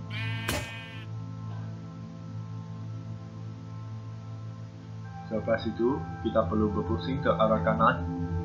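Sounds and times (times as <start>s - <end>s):
goat in a puzzle game bleating short nasal calls: 0.1s - 1.1s
speech: 5.3s - 8.3s.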